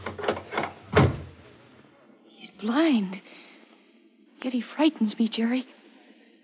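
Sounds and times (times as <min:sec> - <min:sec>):
door rattling: 0:00.0 - 0:01.4
speech: 0:02.6 - 0:03.4, 0:04.4 - 0:05.8.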